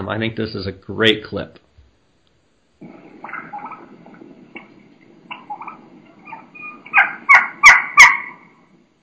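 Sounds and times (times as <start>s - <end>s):
speech: 0.0s - 1.6s
young wild turkey hen high-pitched keeking calls: 3.0s - 4.7s, 5.3s - 9.0s.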